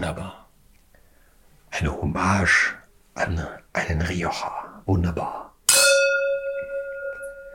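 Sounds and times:
speech: 0:01.8 - 0:05.4
wine glasses clinking together in a toast with Rioja: 0:05.7 - 0:07.5.

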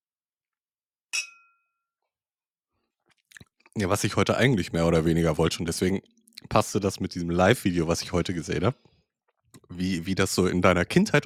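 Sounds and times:
glasses clinking in a toast: 0:01.2 - 0:01.6
speech: 0:03.8 - 0:08.9, 0:09.6 - 0:11.2.

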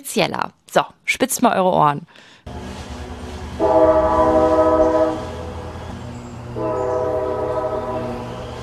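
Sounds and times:
speech: 0:00.0 - 0:02.9, 0:03.6 - 0:04.6
old railway train horn blasts: 0:02.5 - 0:08.6.

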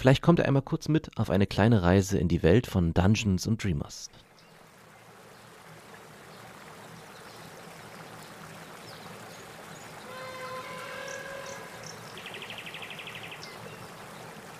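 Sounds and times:
speech: 0:00.0 - 0:04.2
flowing river water rushing during boat trip: 0:04.3 - 0:14.5.

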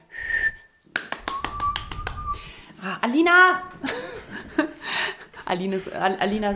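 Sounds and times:
person whistling: 0:00.1 - 0:02.5
sharp finger snaps: 0:00.9 - 0:02.4
speech: 0:02.8 - 0:04.0, 0:05.5 - 0:06.5
laughter: 0:03.8 - 0:05.4.

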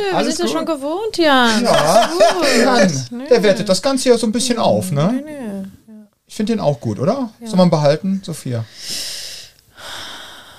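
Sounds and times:
speech: 0:00.0 - 0:05.5, 0:06.3 - 0:09.1
laughter: 0:01.4 - 0:03.1
long airy breathing: 0:08.7 - 0:10.5.

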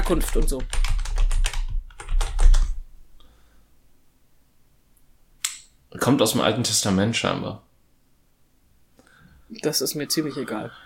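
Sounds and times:
typing on a computer keyboard: 0:00.0 - 0:02.8
speech: 0:00.1 - 0:00.8, 0:06.1 - 0:07.7, 0:09.5 - 0:10.8.

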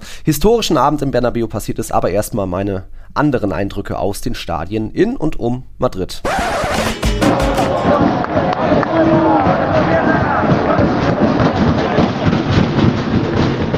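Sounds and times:
speech: 0:00.2 - 0:08.1
sharp bangs: 0:06.3 - 0:08.4
football fans pounding on steel scaffold stadium stands: 0:06.6 - 0:13.7
roaring football crowd at a stadium in Fuenlabrada: 0:06.7 - 0:12.3.

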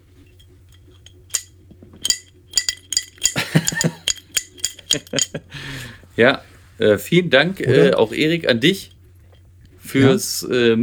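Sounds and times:
glasses clinking in a toast: 0:00.3 - 0:05.4
speech: 0:04.9 - 0:05.4, 0:06.2 - 0:08.9, 0:09.9 - 0:10.8.

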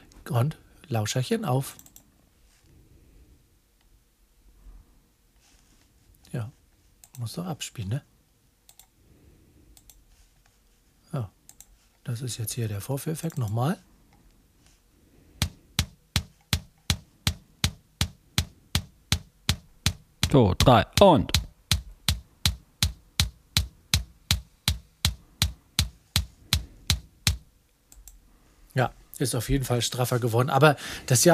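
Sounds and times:
speech: 0:00.3 - 0:01.8, 0:07.2 - 0:08.1, 0:11.2 - 0:11.4, 0:12.1 - 0:13.9, 0:20.3 - 0:21.4, 0:28.8 - 0:31.3
punchy tight bass drum thumping: 0:15.4 - 0:26.3.

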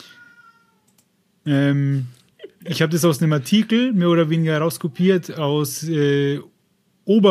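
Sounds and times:
cat meowing: 0:00.0 - 0:00.9
faint noise: 0:00.0 - 0:07.2
soft clicks: 0:00.8 - 0:01.2
speech: 0:01.5 - 0:06.5, 0:07.1 - 0:07.2.

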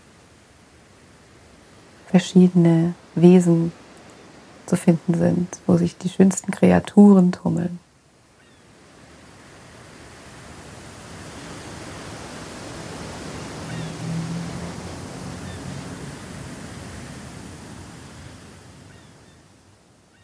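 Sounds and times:
ocean surf washing onto shore: 0:00.0 - 0:20.2
speech: 0:02.1 - 0:03.8, 0:04.7 - 0:07.8.

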